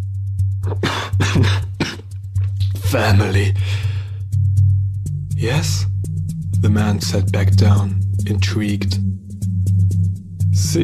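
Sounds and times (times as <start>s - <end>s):
steady low hum: 0.0s - 10.8s
speech: 0.6s - 1.4s, 2.9s - 3.9s, 5.4s - 5.9s, 6.6s - 9.3s, 10.6s - 10.8s
man chuckling and coughing: 0.6s - 2.1s.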